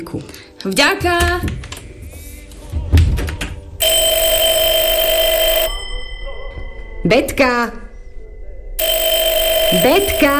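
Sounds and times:
speech: 0:00.0 - 0:01.7, 0:07.0 - 0:07.8, 0:09.7 - 0:10.3
telephone bell ringing: 0:03.8 - 0:06.6, 0:08.8 - 0:10.3.

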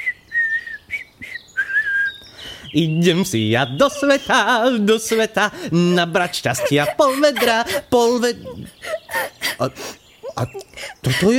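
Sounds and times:
cheerful whistling of a tune: 0:00.0 - 0:02.2
speech: 0:02.7 - 0:08.8, 0:09.6 - 0:11.3
laughter: 0:03.8 - 0:11.3.

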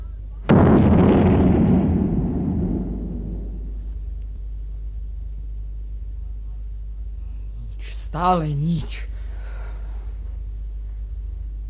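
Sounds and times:
cannon firing a single shot after being reloaded: 0:00.5 - 0:04.2
heavy rumble after a cannon shot: 0:00.5 - 0:05.1
speech: 0:08.2 - 0:09.1.

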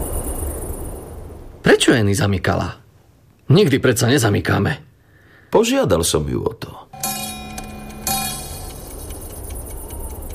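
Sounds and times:
speech: 0:01.7 - 0:02.8, 0:03.5 - 0:04.9, 0:05.5 - 0:07.0
clock striking chimes: 0:07.0 - 0:09.8.

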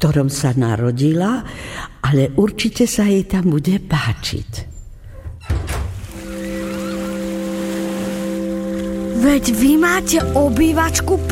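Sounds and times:
speech: 0:00.0 - 0:04.7, 0:09.2 - 0:11.3
breezy wind over open water: 0:05.8 - 0:09.2
sea waves over open water: 0:05.9 - 0:11.3
deep sustained foghorn-like tone: 0:06.2 - 0:10.2.

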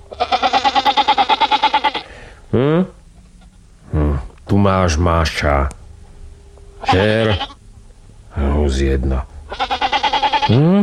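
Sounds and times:
goat bleating: 0:00.0 - 0:02.1, 0:03.4 - 0:03.6, 0:06.8 - 0:07.6, 0:09.5 - 0:10.7
speech: 0:02.5 - 0:03.0, 0:04.7 - 0:05.8, 0:06.9 - 0:07.6, 0:08.4 - 0:09.8, 0:10.5 - 0:10.8.

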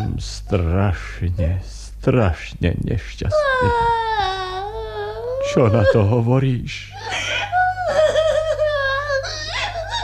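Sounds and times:
speech: 0:00.2 - 0:04.4, 0:05.5 - 0:07.2
person crying in wavering wails and sobs: 0:03.3 - 0:06.2, 0:06.9 - 0:10.0.

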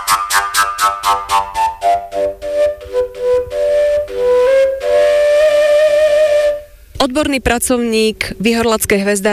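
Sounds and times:
wooden folk whistle flute playing a bright melody: 0:00.0 - 0:06.8
speech: 0:07.1 - 0:09.3.

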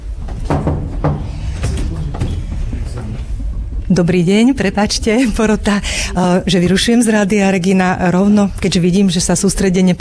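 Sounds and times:
low room rumble: 0:00.0 - 0:10.0
knocking on a wooden door: 0:00.3 - 0:03.8
speech: 0:03.9 - 0:10.0.

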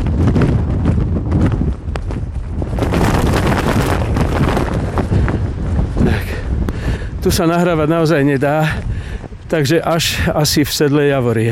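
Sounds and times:
jacket hood flapping in strong wind: 0:00.0 - 0:06.0
near-gale wind buffeting the microphone on a mountain trail: 0:00.0 - 0:11.5
speech: 0:07.2 - 0:08.9, 0:09.5 - 0:11.5.

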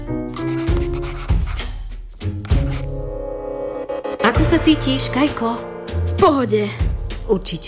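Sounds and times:
pen scratching across paper writing in a diary: 0:00.3 - 0:01.7, 0:02.5 - 0:02.9
speech: 0:04.4 - 0:07.6.

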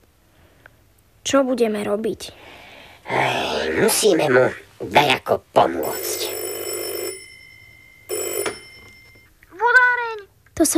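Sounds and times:
speech: 0:01.2 - 0:06.2, 0:10.6 - 0:10.7
telephone ringing: 0:05.8 - 0:09.4.

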